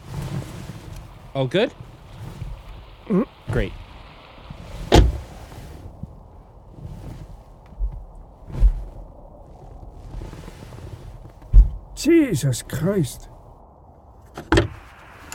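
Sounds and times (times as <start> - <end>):
soft thuds: 0.0 - 12.1, 14.2 - 15.3
rustling: 0.0 - 15.3
speech: 1.3 - 1.9, 3.1 - 3.8, 12.0 - 13.3
car door slamming outdoors on a miserable day: 4.8 - 5.8, 11.4 - 12.0, 14.3 - 15.3.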